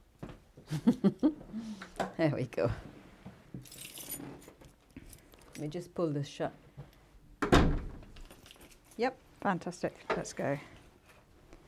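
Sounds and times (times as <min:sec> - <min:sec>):
speech: 0:00.7 - 0:02.9, 0:05.6 - 0:06.6, 0:09.0 - 0:10.8
keys jangling: 0:03.6 - 0:05.7, 0:08.2 - 0:09.1.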